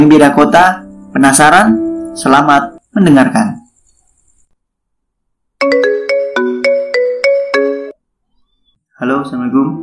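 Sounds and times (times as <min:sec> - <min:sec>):
speech: 0:00.0 - 0:03.6, 0:09.0 - 0:09.8
phone ringtone melody: 0:05.6 - 0:08.0.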